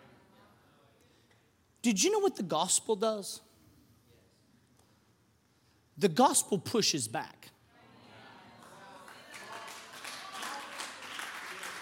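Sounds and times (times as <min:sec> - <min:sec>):
speech: 0:01.8 - 0:03.5, 0:06.0 - 0:07.6
crowd applauding: 0:08.6 - 0:11.8.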